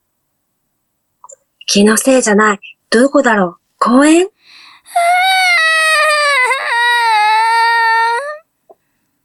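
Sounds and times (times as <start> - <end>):
speech: 1.7 - 5.3
lost child crying in a park: 4.9 - 8.5.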